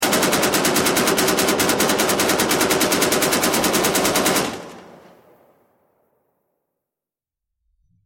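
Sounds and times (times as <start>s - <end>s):
assault rifle burst fire: 0.0s - 5.2s.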